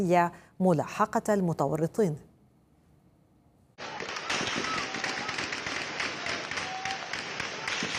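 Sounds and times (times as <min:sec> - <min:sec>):
speech: 0:00.0 - 0:02.3
heavy gunfire barrage of rapid sharp cracks: 0:03.8 - 0:07.9.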